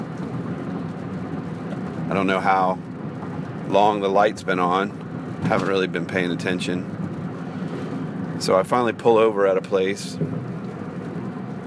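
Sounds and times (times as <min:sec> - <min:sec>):
steady dense rain: 0:00.0 - 0:11.6
speech: 0:02.1 - 0:02.9, 0:03.7 - 0:07.0, 0:08.4 - 0:10.5.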